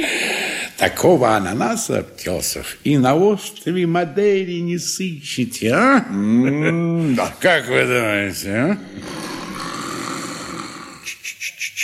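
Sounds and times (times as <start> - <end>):
speech: 0.8 - 9.3
sleeping pharmacist snoring: 8.7 - 11.2.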